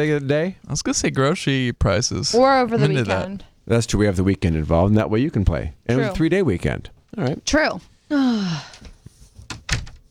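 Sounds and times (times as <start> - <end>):
speech: 0.0 - 8.9
door creaking shut and latching: 8.8 - 10.0.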